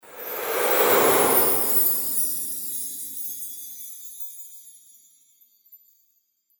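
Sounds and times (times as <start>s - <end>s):
Christmas fairy whoosh: 0.0s - 3.6s.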